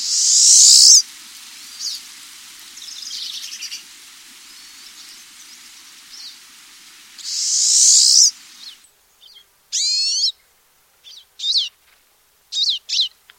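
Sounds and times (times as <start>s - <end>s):
Pine siskin giving a high buzzy call: 0.0s - 6.5s, 7.2s - 10.4s.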